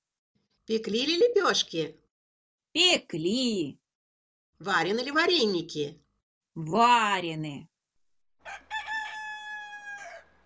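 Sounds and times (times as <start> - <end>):
speech: 0.7 - 2.0, 2.8 - 3.8, 4.6 - 6.0, 6.6 - 7.7
rooster crowing during a Christmas-season caroling performance: 8.4 - 10.4.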